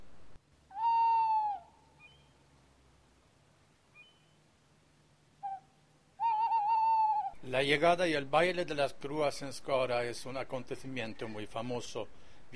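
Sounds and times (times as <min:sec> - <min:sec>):
scops owl giving whistled hoots: 0:00.7 - 0:02.4, 0:03.9 - 0:04.4, 0:05.4 - 0:07.4
speech: 0:07.5 - 0:12.5.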